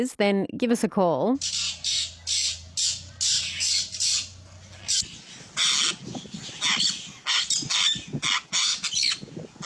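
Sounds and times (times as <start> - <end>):
speech: 0.0 - 1.6
low steady hum: 1.3 - 5.8
pelican giving harsh raspy squawks: 1.4 - 9.6.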